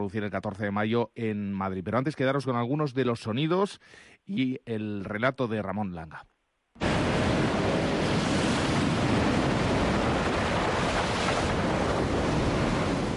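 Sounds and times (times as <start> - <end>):
speech: 0.0 - 7.2
rough ocean waves crashing against coral reef: 6.8 - 13.1
wind: 6.8 - 13.1.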